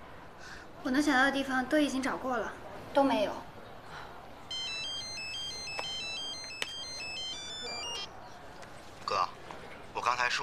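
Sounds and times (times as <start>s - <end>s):
faint noise: 0.0s - 10.4s
speech: 0.8s - 3.5s
phone ringtone playing a repeating melodic electronic tune: 4.5s - 8.1s.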